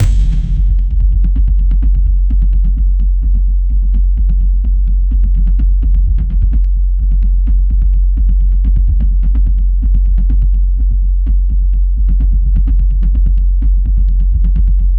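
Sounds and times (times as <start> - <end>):
epic cinematic drum beats: 0.0 - 14.9.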